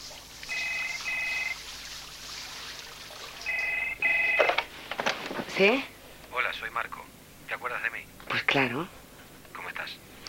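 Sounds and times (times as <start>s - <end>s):
shower running: 0.0s - 4.4s
telephone ringing in bright electronic bursts: 0.4s - 1.7s, 3.4s - 4.7s
speech: 5.6s - 5.9s, 6.6s - 9.0s.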